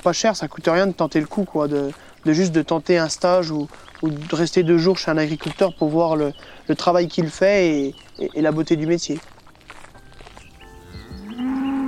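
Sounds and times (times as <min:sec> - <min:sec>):
speech: 0:00.0 - 0:09.4
faint farmyard background: 0:00.0 - 0:11.8
cow mooing: 0:10.9 - 0:11.8.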